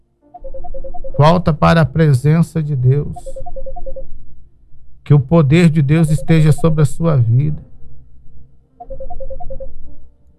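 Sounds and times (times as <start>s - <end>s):
WhatsApp ringtone for an incoming call in a radio studio: 0.4s - 1.7s, 3.1s - 4.2s, 6.0s - 6.9s, 8.8s - 10.1s
low rumble: 0.8s - 10.3s
speech: 1.2s - 3.6s, 5.1s - 7.7s.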